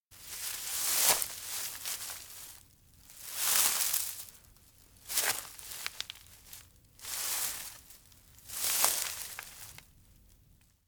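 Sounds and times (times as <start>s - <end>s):
stealthy footsteps on grass: 0.2s - 2.6s, 3.2s - 4.3s, 5.1s - 6.3s, 7.0s - 7.9s, 8.5s - 9.7s.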